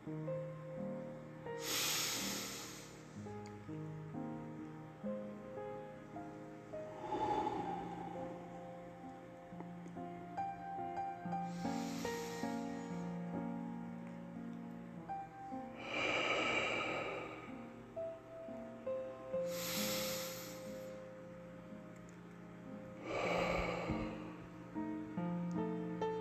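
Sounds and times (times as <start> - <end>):
soft steady music: 0.0 - 26.1
slow breaths drawn in through the nose during a guided breathing exercise: 1.6 - 3.2, 6.9 - 8.6, 11.4 - 13.1, 15.8 - 17.7, 19.5 - 20.9, 23.0 - 24.4.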